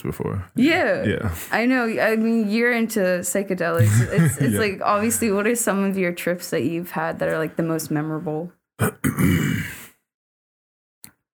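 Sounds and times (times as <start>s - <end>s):
speech: 0.0s - 9.8s
throat clearing: 3.8s - 4.6s, 8.8s - 9.8s
laughter: 3.8s - 5.4s.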